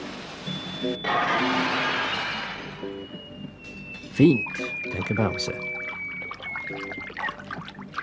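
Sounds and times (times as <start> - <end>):
thin whistling tone: 0.5 - 1.2, 2.6 - 7.8
speech: 0.8 - 1.8, 4.2 - 5.8
water splashing from a rocket landing: 4.4 - 8.0.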